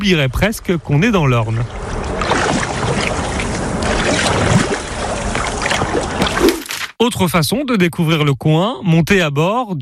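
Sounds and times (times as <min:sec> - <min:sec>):
speech: 0:00.0 - 0:01.8, 0:07.0 - 0:09.8
wind buffeting: 0:00.0 - 0:06.7
churning water from boats moving on a lake in the Orne, Normandy, France: 0:00.0 - 0:06.9.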